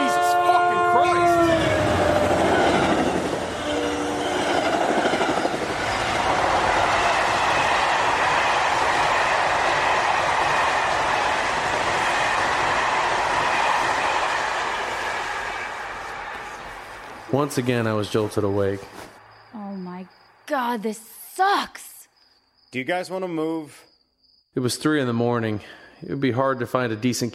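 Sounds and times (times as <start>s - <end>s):
train rumbling past on nearby tracks: 0.0s - 18.8s
speech: 17.4s - 19.1s, 20.6s - 21.9s, 22.7s - 23.9s, 24.5s - 27.3s.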